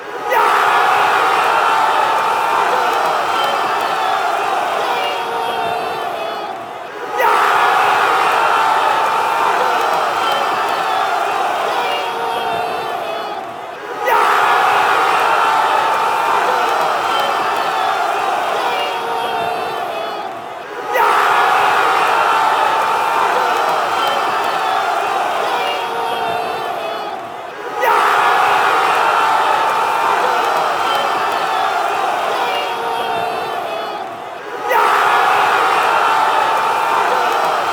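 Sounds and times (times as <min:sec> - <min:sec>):
Swedish football fans chanting after a goal: 0:00.0 - 0:37.7.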